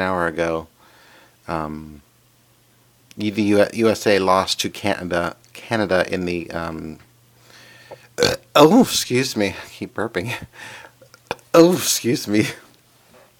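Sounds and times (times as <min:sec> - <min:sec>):
speech: 0:00.0 - 0:00.7, 0:01.5 - 0:02.1, 0:03.2 - 0:07.1, 0:08.2 - 0:10.8, 0:11.6 - 0:12.6
person burping: 0:07.9 - 0:08.6, 0:11.1 - 0:11.5.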